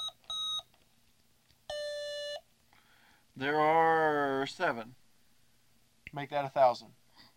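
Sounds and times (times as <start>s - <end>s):
electronic beeps from a small computer pad as buttons are pressed: 0.0s - 0.7s
speech: 3.4s - 5.0s, 6.1s - 7.3s.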